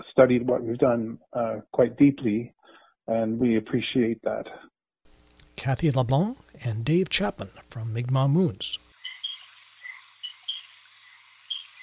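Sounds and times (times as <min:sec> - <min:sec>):
speech: 0:00.2 - 0:04.7, 0:05.6 - 0:08.8
chorus of frogs trilling and chirping: 0:08.9 - 0:11.8.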